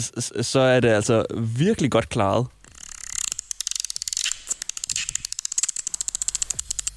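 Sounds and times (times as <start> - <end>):
speech: 0.0 - 2.6
dolphin clicks: 2.7 - 6.9.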